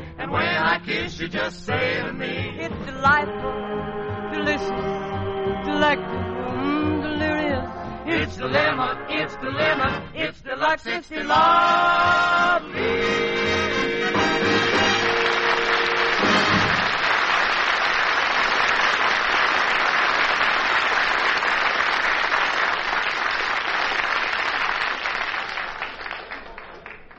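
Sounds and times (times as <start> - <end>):
music: 0.0 - 17.0
speech: 0.8 - 5.1, 5.7 - 6.3, 7.0 - 13.7
big crowd applauding after a song: 14.1 - 27.1.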